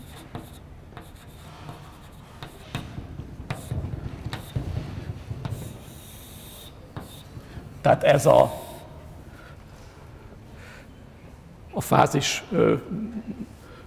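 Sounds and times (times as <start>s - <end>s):
writing out a formula during a lecture: 0.0s - 8.8s
speech: 7.8s - 8.6s, 11.9s - 13.5s.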